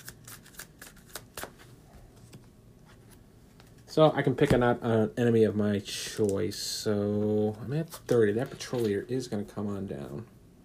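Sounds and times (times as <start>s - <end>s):
deck of cards being shuffled: 0.0s - 3.9s, 7.8s - 9.1s
speech: 4.0s - 10.4s.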